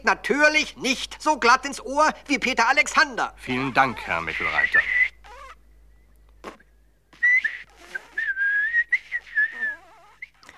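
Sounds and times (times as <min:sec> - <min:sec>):
speech: 0:00.0 - 0:05.0
person failing to whistle in a comedy sketch with breathy hisses and sputters: 0:04.6 - 0:05.6, 0:06.4 - 0:10.5.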